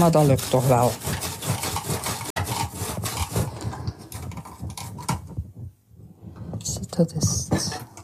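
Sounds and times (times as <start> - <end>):
speech: 0.0 - 1.2, 7.0 - 7.4
knife cutting through hard fennel: 0.0 - 5.2.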